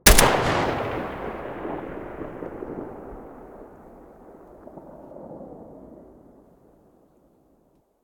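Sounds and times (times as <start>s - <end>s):
Galil rifle muzzle blast: 0.0s - 3.4s.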